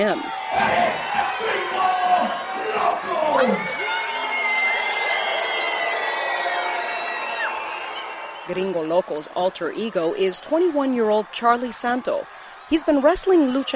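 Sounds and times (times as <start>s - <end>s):
speech: 0.0s - 3.7s, 8.5s - 13.7s
sharp whoops and drawn-out yells from wrestling crowd: 0.0s - 8.5s
large wrestling arena crowd jeering and shouting: 0.0s - 13.7s.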